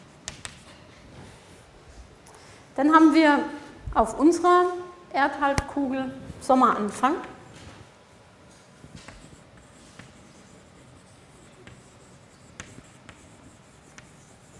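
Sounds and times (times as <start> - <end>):
speech: 2.8 - 7.3
handwriting strokes: 9.0 - 14.5.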